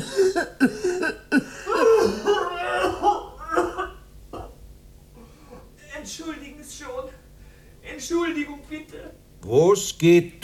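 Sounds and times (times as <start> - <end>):
person in a stage play coughing harshly: 0.0 - 2.2
laughter: 0.0 - 4.0
speech: 0.6 - 0.8, 9.5 - 10.4.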